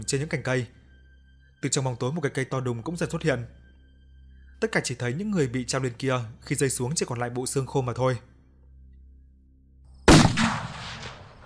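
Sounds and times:
speech: 0.0 - 0.8, 1.6 - 3.6, 4.6 - 8.3
explosion blast sound effect in an audio horror story: 10.1 - 11.4.

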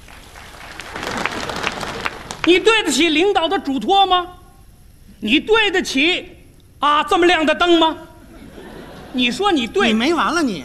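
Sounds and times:
audience applause at a live stage comedy performance: 0.0 - 2.5
speech: 2.5 - 4.4, 5.2 - 8.1, 9.2 - 10.6
laughter: 8.2 - 10.0.

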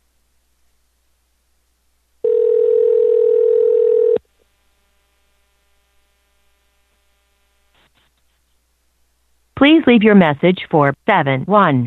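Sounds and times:
ringback tone of an outgoing telephone call: 2.2 - 4.2
speech: 9.6 - 11.8.

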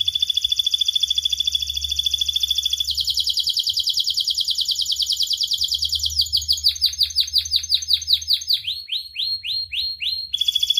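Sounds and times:
canary singing a rapid rolling trill: 0.0 - 10.7.

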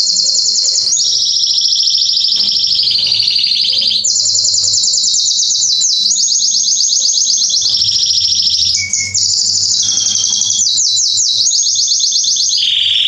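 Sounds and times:
male Belgian canary singing long rolling trills: 0.0 - 13.0.

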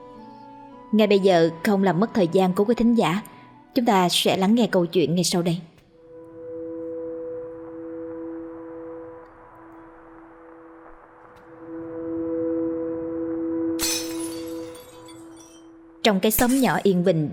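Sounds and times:
speech: 0.9 - 5.7, 16.1 - 17.3
steady low humming drone: 6.1 - 16.1
things being smashed in a quiet small village: 13.8 - 15.6, 16.4 - 16.8
sharp burst of glassy breaking clatter: 13.8 - 15.7, 16.4 - 16.8.

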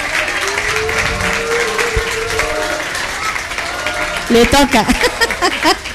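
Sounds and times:
audience applause after a pianist's performance: 0.0 - 5.9
speech: 4.3 - 5.9
laughter: 4.8 - 5.9.

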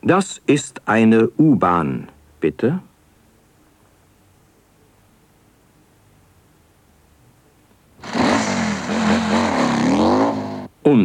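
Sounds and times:
speech: 0.0 - 2.9, 10.8 - 11.0
German motorcycle engine revving hard: 8.0 - 10.7.

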